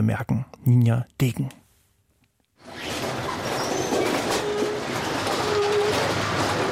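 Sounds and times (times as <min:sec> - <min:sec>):
speech: 0:00.0 - 0:01.6
dense mechanical clatter and scraping: 0:02.6 - 0:06.7
heavy track renewal train rumbling and grinding while replacing railway sleepers: 0:02.6 - 0:06.7
high metallic squeals: 0:02.7 - 0:06.5.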